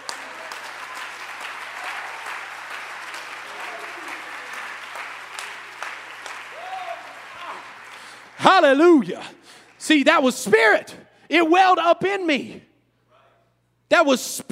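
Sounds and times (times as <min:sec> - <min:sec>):
congregation applauding: 0:00.0 - 0:10.7
speech: 0:08.6 - 0:12.7, 0:13.9 - 0:14.5.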